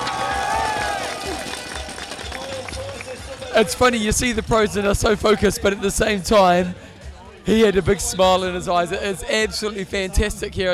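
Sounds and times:
scattered higher calls from roadside crowd: 0:00.0 - 0:03.5
dense roadside crowd cheering and shouting at runners on a race road: 0:00.0 - 0:05.0
speech: 0:03.6 - 0:06.8, 0:07.4 - 0:10.7.

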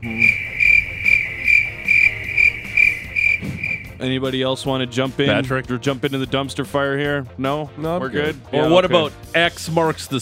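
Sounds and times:
cricket chirping: 0:00.0 - 0:04.0
speech: 0:04.0 - 0:10.1.

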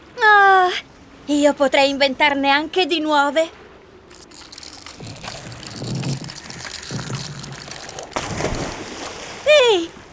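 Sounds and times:
speech: 0:00.8 - 0:03.6
loud water rushing and splashing: 0:04.1 - 0:10.1.

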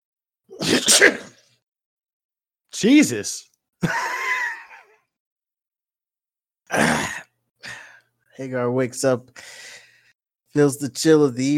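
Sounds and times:
single forceful sneeze with inhaled lead-in: 0:00.5 - 0:01.6, 0:06.7 - 0:07.3
speech: 0:00.6 - 0:01.3, 0:02.8 - 0:04.2, 0:08.4 - 0:09.7, 0:10.6 - 0:11.5.

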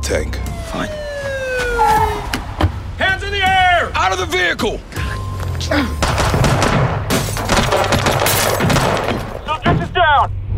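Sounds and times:
speech: 0:00.0 - 0:01.0, 0:04.0 - 0:04.9, 0:05.6 - 0:06.2, 0:07.8 - 0:10.4
high warbling tone: 0:00.0 - 0:03.6
gunshots at a gas station during a police chase: 0:06.0 - 0:09.5.

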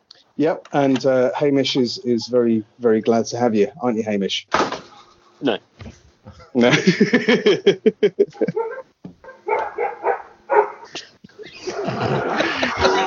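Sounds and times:
speech: 0:00.4 - 0:04.7, 0:05.4 - 0:08.9
laughter: 0:06.4 - 0:08.8, 0:11.4 - 0:13.0
several dogs barking and yipping excitedly: 0:08.3 - 0:13.0.

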